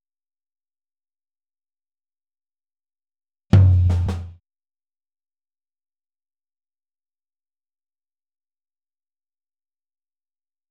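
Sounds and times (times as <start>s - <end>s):
floor tom drum in a boogaloo outro: 3.6s - 4.4s.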